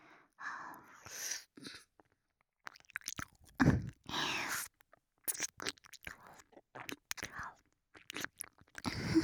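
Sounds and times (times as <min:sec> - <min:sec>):
ear nibbling with teeth rubbing and chewing against the ear: 0:02.6 - 0:04.0, 0:05.2 - 0:09.1.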